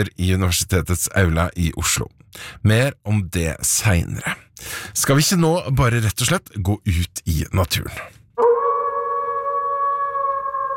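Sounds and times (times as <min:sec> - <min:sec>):
speech: 0:00.0 - 0:08.5
wolf howling: 0:08.4 - 0:10.7.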